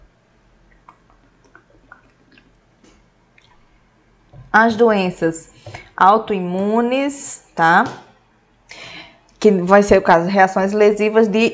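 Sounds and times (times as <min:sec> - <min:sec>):
person sipping and swallowing water: 0:00.7 - 0:03.8
speech: 0:04.5 - 0:08.1, 0:09.4 - 0:11.5.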